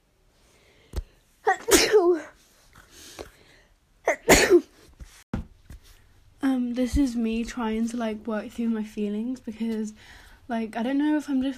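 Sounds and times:
small clicks and breaths: 0:00.4 - 0:01.3, 0:02.7 - 0:03.8, 0:10.0 - 0:10.5
person sneezing: 0:01.5 - 0:02.3, 0:04.0 - 0:04.8
speech: 0:06.8 - 0:11.5.

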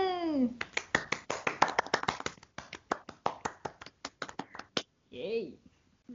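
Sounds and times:
hands clapping: 0:00.6 - 0:04.9.

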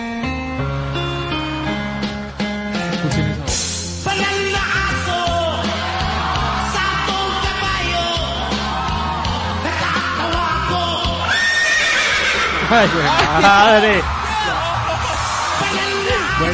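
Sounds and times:
dense steady musical backing with a thumping bass: 0:00.2 - 0:11.2
laughter: 0:03.0 - 0:03.5, 0:11.8 - 0:16.5
horse whinnies in a song: 0:11.2 - 0:13.0
speech: 0:12.8 - 0:14.2.

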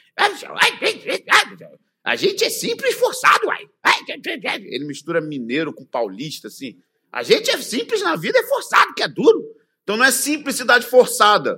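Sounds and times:
man imitating a barking dog-like speech: 0:00.2 - 0:01.8, 0:03.0 - 0:04.6
speech: 0:00.4 - 0:11.5.

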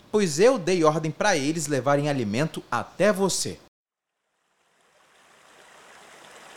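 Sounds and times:
speech: 0:00.1 - 0:03.6
stream water flowing: 0:04.2 - 0:06.5.

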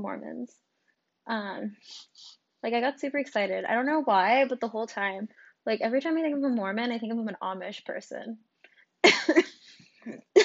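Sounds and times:
speech: 0:00.0 - 0:00.7, 0:01.3 - 0:10.4
person coughing: 0:09.0 - 0:10.4.

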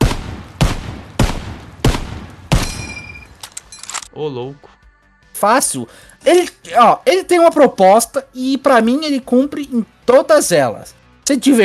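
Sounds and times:
carbine gunshots: 0:00.0 - 0:03.3
faint metallic ringing and scattered clinks: 0:02.6 - 0:04.1
speech: 0:04.2 - 0:04.8, 0:05.4 - 0:11.6.

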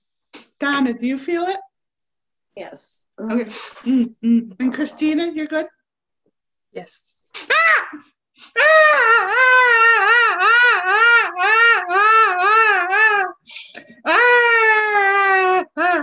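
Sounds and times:
speech: 0:00.6 - 0:01.7, 0:02.6 - 0:05.8, 0:06.7 - 0:07.2, 0:07.9 - 0:14.7
person wailing and crying during an emotional release session: 0:07.5 - 0:16.0.

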